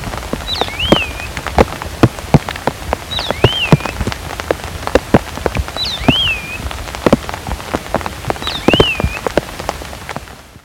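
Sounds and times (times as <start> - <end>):
rain drips: 0.0 - 10.3
heavy pattering rain in Papua New Guinea: 0.0 - 10.6
island thrush whistled song in Papua New Guinea: 0.5 - 1.3, 3.1 - 4.0, 5.8 - 6.7, 8.4 - 9.3.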